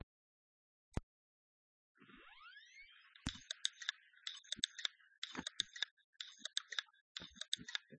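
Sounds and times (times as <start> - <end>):
Toshiba clicking and sweeping: 3.2 - 7.9.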